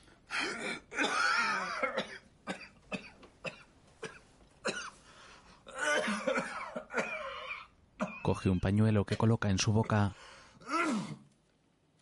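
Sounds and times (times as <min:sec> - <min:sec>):
choked coughing fit: 0:00.3 - 0:05.0, 0:05.7 - 0:08.4
speech: 0:08.4 - 0:10.3.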